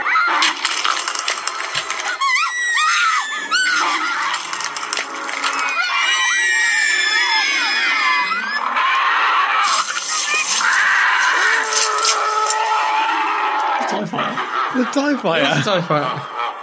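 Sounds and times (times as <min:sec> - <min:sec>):
crowd of children screaming: 0:00.0 - 0:16.6
laughter: 0:13.6 - 0:16.6
speech: 0:14.8 - 0:16.3.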